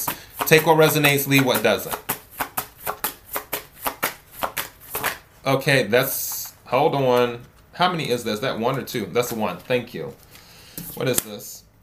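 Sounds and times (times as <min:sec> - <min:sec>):
deck of cards being shuffled: 0:00.2 - 0:05.3, 0:08.7 - 0:11.4
speech: 0:00.5 - 0:02.1, 0:05.5 - 0:10.2, 0:10.8 - 0:11.8.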